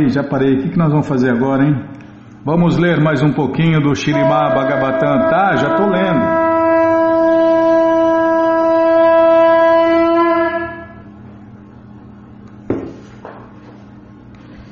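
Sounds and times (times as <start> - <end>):
speech: 0.0 - 6.4
conch shell blown in one long steady blast: 4.1 - 11.1
brief knock: 12.7 - 13.5.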